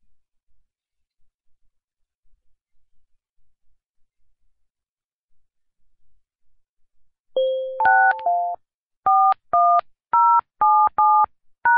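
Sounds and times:
telephone keypad tones entering a conference call access code: 7.4s - 11.7s.

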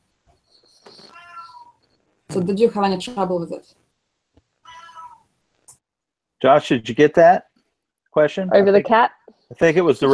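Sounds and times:
cat meowing loudly: 1.1s - 1.8s, 4.6s - 5.3s
speech: 2.3s - 3.8s, 6.4s - 7.5s, 8.2s - 10.1s.

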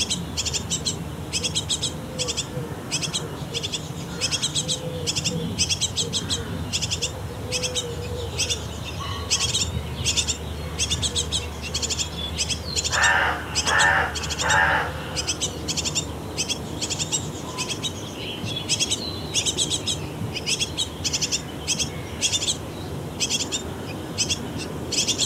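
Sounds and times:
parent birds chirping and tweeting around a nest box: 0.0s - 25.2s.

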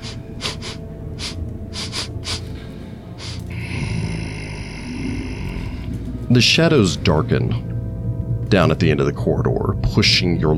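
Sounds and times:
deep heavy monstrous breathing with rasping inhales and snorting exhales: 0.0s - 6.4s
rising high-pitched tonal drone: 0.0s - 8.2s
speech: 6.3s - 7.7s, 8.5s - 10.5s.

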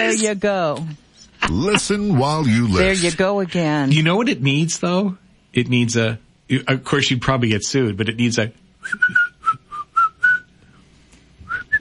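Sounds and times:
speech: 0.0s - 9.2s
person whistling a tune: 8.8s - 10.6s, 11.4s - 11.7s.

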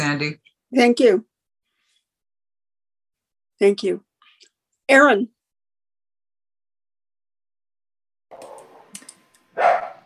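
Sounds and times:
speech: 0.1s - 1.3s, 3.6s - 4.1s, 4.9s - 5.4s
clicks: 8.3s - 9.5s
dog barking: 9.6s - 10.0s.

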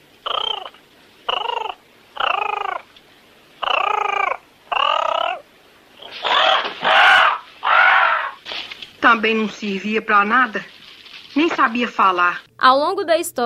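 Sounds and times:
parrot squawking: 0.2s - 2.9s, 3.6s - 8.4s
speech: 9.1s - 10.8s, 11.4s - 13.4s.

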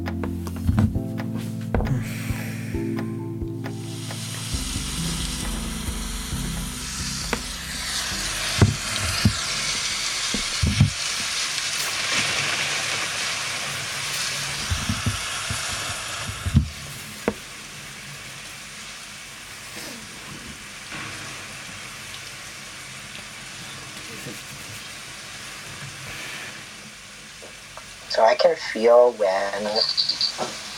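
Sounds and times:
low droning tones: 0.0s - 11.7s
relaxing rain sounds from an app: 3.7s - 30.7s
speech: 28.4s - 29.8s.

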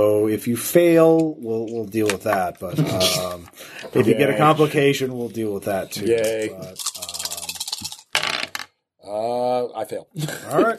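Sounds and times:
speech: 0.0s - 6.9s, 9.9s - 10.7s
dice rattling and clattering on a surface during a tabletop role-playing game: 6.2s - 8.7s.

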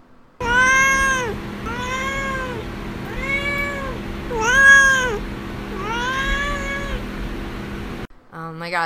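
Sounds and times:
cat meowing loudly: 0.4s - 7.1s.

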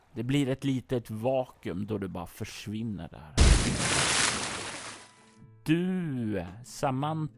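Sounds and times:
speech: 0.2s - 3.8s, 5.6s - 7.3s
low thud: 3.4s - 4.4s
water rushing down from the ceiling: 3.4s - 5.1s.

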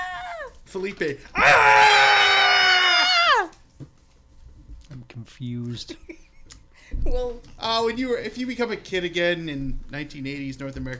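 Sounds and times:
speech: 0.7s - 2.1s, 5.3s - 10.9s
several people screaming loudly: 1.4s - 3.6s.

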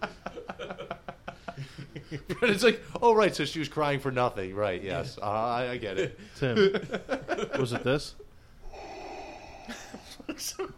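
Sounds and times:
laughter: 0.0s - 2.9s, 5.9s - 8.1s, 9.7s - 10.7s
speech: 2.0s - 8.2s, 10.4s - 10.7s
man breathing heavily with snore-like rasps: 8.5s - 10.4s.

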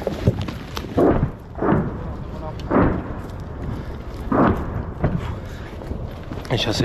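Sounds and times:
continuous low roar: 0.0s - 6.8s
multiple rocket launcher shelling explosions: 0.9s - 5.5s
speech: 6.5s - 6.8s.

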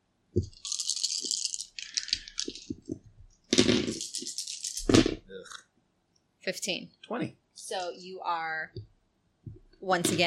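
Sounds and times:
speech: 0.4s - 0.6s, 6.5s - 8.8s, 9.8s - 10.2s
dice rattling in a cup: 0.4s - 2.8s, 3.6s - 5.0s.

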